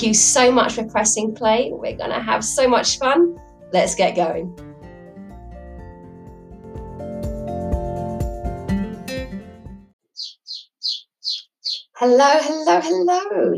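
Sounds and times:
speech: 0.0 - 4.7, 12.0 - 13.5
music: 0.0 - 10.0
small birds chirping outside a window: 10.0 - 12.0.

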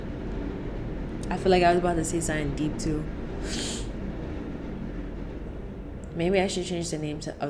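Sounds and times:
train rumbling past with a heavy low-frequency roar: 0.0 - 7.4
speech: 1.3 - 3.8, 6.2 - 7.4.

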